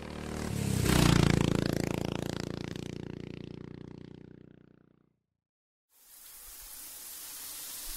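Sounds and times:
motorcycle engine revving as rider leaves home: 0:00.0 - 0:05.1
rushing water from a shower: 0:06.0 - 0:07.9.

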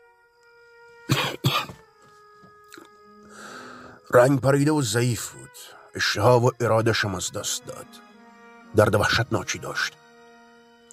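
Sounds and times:
steady tonal hum: 0:00.0 - 0:10.9
person coughing: 0:01.1 - 0:01.8
speech: 0:04.1 - 0:08.1, 0:08.7 - 0:10.0.

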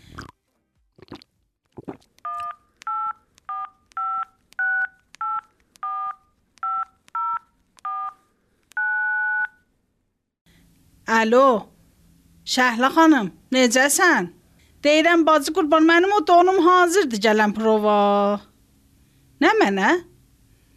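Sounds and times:
touch-tone phone keypad dialing to call a tailor: 0:02.4 - 0:08.2
speech: 0:11.2 - 0:11.7, 0:12.5 - 0:18.5, 0:19.4 - 0:20.1.

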